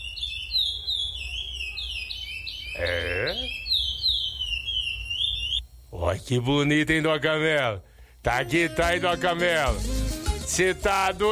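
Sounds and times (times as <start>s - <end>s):
curió finch singing sabiá-style song: 0.0s - 5.6s
speech: 2.8s - 3.6s, 6.1s - 11.3s.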